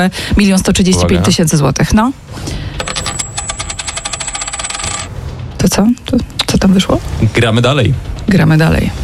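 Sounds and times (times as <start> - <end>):
speech: 0.0 - 2.9, 5.8 - 9.0
tossed coin spinning and rattling: 2.8 - 5.2.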